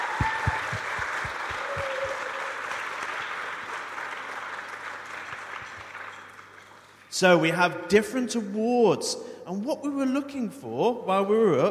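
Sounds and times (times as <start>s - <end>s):
audience applause echoing in a large indoor school hall: 0.0s - 7.0s
speech: 7.2s - 11.7s.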